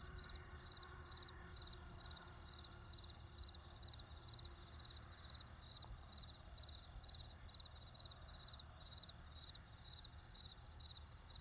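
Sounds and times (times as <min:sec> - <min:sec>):
crickets chirping: 0:00.2 - 0:11.3.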